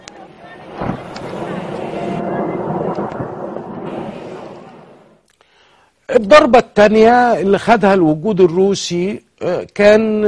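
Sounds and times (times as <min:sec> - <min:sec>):
sharp crack: 0:00.0 - 0:05.5
Russian warplane maneuvering overhead over the Maarat al-Numan countryside: 0:00.2 - 0:05.2
speech: 0:06.1 - 0:10.2.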